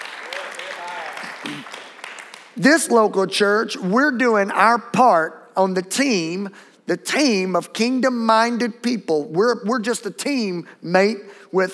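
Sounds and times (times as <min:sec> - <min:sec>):
church audience clapping hands: 0:00.0 - 0:02.9
speech: 0:02.6 - 0:11.7.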